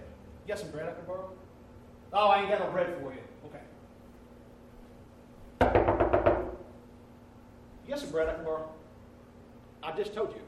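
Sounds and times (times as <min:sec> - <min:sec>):
speech: 0:00.5 - 0:01.5, 0:02.1 - 0:03.8, 0:07.9 - 0:08.8, 0:09.8 - 0:10.4
firm knocking on a door: 0:05.6 - 0:06.7.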